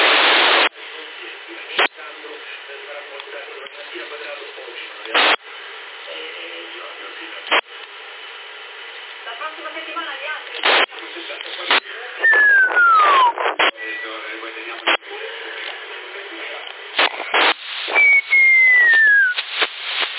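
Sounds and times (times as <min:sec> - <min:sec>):
people talking over CB radio: 0:00.0 - 0:05.4, 0:06.0 - 0:07.6, 0:09.2 - 0:17.6
CB radio hiss and bursts of static: 0:00.0 - 0:07.7, 0:09.3 - 0:20.1
whistling carried over a CB radio channel on 446 MHz: 0:12.2 - 0:14.2, 0:17.9 - 0:19.5.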